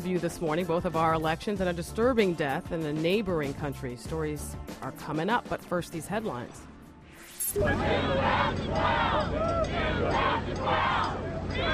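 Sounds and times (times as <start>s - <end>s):
speech: 0.0s - 6.7s, 7.5s - 11.7s
large crowd cheering and shouting at a governor's homecoming rally in Alaska: 7.6s - 11.7s.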